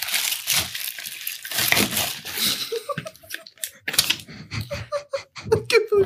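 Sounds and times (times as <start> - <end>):
plastic wrapping of a gift package crinkling as it is torn open: 0.0 - 4.2
person laughing: 2.3 - 6.0.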